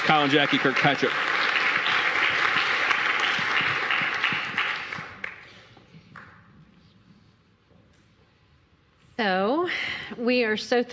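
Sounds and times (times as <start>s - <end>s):
speech: 0.0s - 1.4s, 10.2s - 10.9s
crowd applauding: 0.0s - 6.3s.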